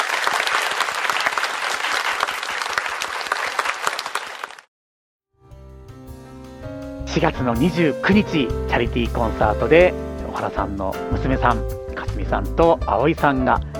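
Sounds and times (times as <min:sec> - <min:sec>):
audience applause after a piano duet at a charity concert: 0:00.0 - 0:04.7
speech: 0:07.1 - 0:13.7.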